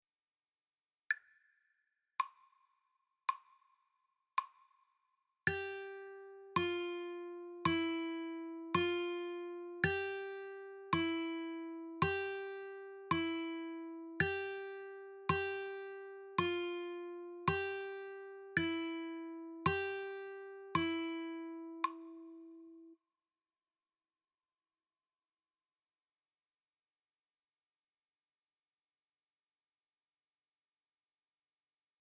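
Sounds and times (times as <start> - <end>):
guitar playing E F G practice notes: 5.5 - 22.9.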